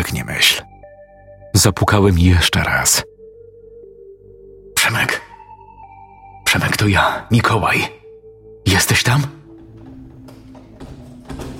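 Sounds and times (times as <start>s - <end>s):
speech: 1.6s - 3.1s, 4.8s - 5.2s, 6.5s - 8.0s, 8.7s - 9.4s
dull footsteps: 9.4s - 11.5s
locks being turned on a door: 9.4s - 11.5s.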